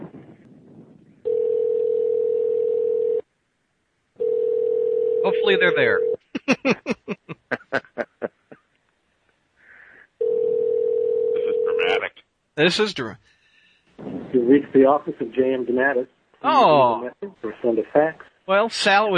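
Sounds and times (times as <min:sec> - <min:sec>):
long steady electronic phone line ringback tone: 0:01.2 - 0:03.2, 0:04.2 - 0:06.2, 0:10.2 - 0:11.9
speech: 0:05.2 - 0:07.4, 0:12.6 - 0:13.3, 0:14.5 - 0:19.1
laughter: 0:06.4 - 0:08.6.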